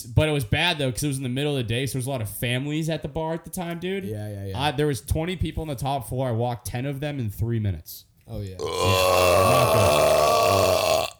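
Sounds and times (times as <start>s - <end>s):
speech: 0.0s - 11.0s
long loud gravelly burp: 8.6s - 11.1s.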